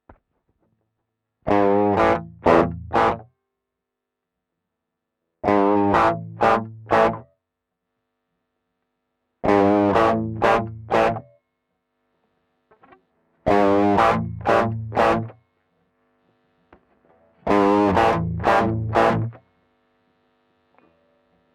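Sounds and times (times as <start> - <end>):
electric guitar through overdrive pedal with gain up: 1.5 - 3.3, 5.4 - 7.3, 9.4 - 11.3, 12.7 - 15.4, 16.8 - 19.4.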